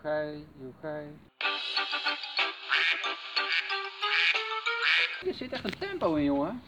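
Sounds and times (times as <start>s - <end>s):
speech: 0.0s - 1.5s, 5.2s - 6.6s
flock of ducks quacking loudly while walking: 2.4s - 5.2s.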